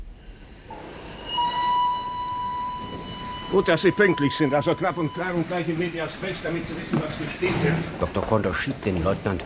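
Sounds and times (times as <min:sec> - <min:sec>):
express train departing a station: 0:00.0 - 0:08.6
train whistle: 0:00.3 - 0:05.7
speech: 0:03.5 - 0:09.4.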